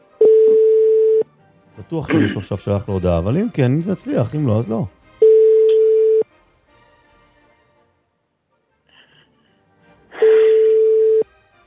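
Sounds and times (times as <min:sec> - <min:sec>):
telephone busy signal tones after dialing: 0:00.2 - 0:01.2, 0:05.2 - 0:06.2, 0:10.6 - 0:11.2
speech: 0:01.8 - 0:05.0.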